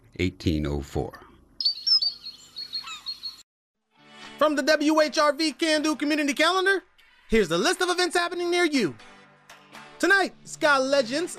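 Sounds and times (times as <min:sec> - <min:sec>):
speech: 0:00.2 - 0:01.2, 0:04.4 - 0:09.1, 0:10.0 - 0:11.3
Lady Gouldian finch chirping and twittering: 0:01.6 - 0:03.4.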